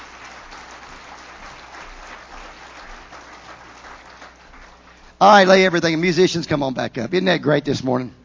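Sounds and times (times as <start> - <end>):
large audience clapping: 0.0 - 5.2
speech: 5.2 - 8.2.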